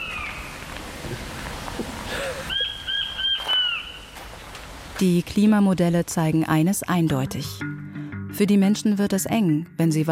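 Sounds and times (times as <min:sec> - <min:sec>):
steady rushing hiss: 0:00.0 - 0:06.8
small king quails giving thin high whistling calls: 0:02.5 - 0:04.1
speech: 0:05.0 - 0:10.1.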